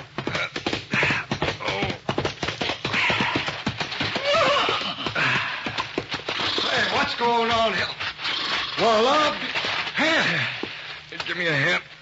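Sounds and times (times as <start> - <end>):
horse hoofbeats galloping: 0.0 - 11.3
horse whinnying: 2.9 - 7.2, 8.2 - 9.2
speech: 8.8 - 9.5, 11.4 - 11.8.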